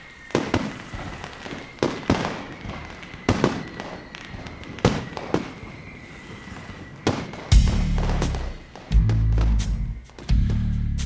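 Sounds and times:
fireworks exploding: 0.0 - 11.0
heavy rumbling booms of fireworks: 7.5 - 11.0.

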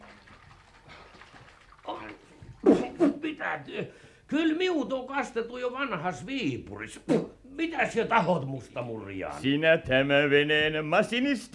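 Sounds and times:
cold water splashing down from a bucket on a boat: 0.0 - 3.0
speech: 3.4 - 11.5.

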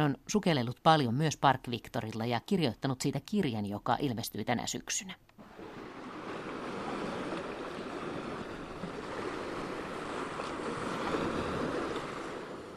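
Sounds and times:
speech: 0.0 - 5.4
sea surf washing onto a shore: 5.4 - 12.7.

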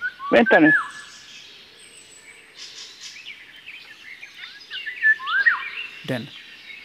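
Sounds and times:
Eurasian golden oriole fluting whistled song: 0.0 - 1.3, 4.2 - 6.8
busy background of other birdsong: 0.0 - 6.8
speech: 0.3 - 1.0, 6.1 - 6.4.

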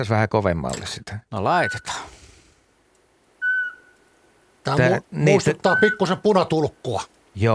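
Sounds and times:
speech: 0.0 - 2.1, 4.7 - 7.5
Eurasian pygmy owl whistling call: 3.4 - 4.1.

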